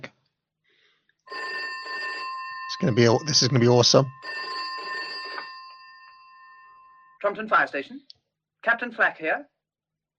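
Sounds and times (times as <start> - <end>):
telephone bell ringing: 1.3 - 7.6
speech: 2.8 - 4.4, 7.2 - 9.5.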